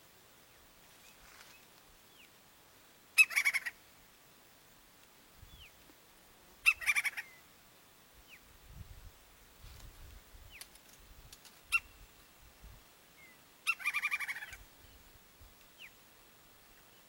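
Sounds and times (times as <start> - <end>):
woodpecker harsh chatter: 3.2 - 3.7, 6.6 - 7.3, 13.7 - 14.6.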